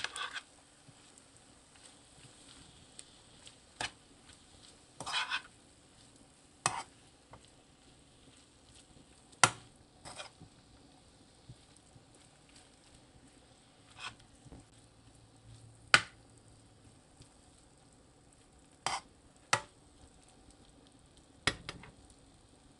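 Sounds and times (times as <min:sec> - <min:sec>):
spoon scraping and knocking against a pan: 0:00.0 - 0:10.6, 0:11.4 - 0:14.8, 0:18.7 - 0:19.8
vegetables seasoned with salt sautéed in a pan: 0:00.0 - 0:22.7.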